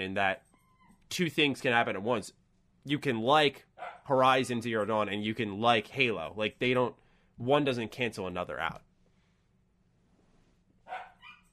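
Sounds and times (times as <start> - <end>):
speech: 0.0 - 0.5, 1.1 - 8.8
dog barking: 3.8 - 4.1, 10.9 - 11.5.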